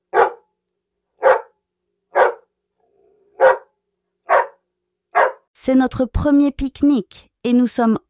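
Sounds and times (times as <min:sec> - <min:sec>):
dog barking: 0:00.1 - 0:00.5, 0:01.2 - 0:02.5, 0:03.4 - 0:05.5
speech: 0:05.6 - 0:08.0.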